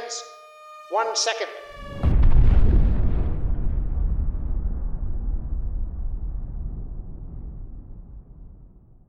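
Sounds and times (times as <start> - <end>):
speech: 0.9 - 2.0
huge bomb strike explosion: 1.8 - 9.0
long low rumbling decay of bomb explosion: 1.8 - 9.0.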